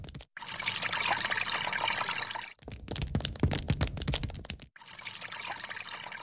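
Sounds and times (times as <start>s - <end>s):
tap water running while someone washes their face: 0.4s - 3.5s, 4.8s - 6.2s.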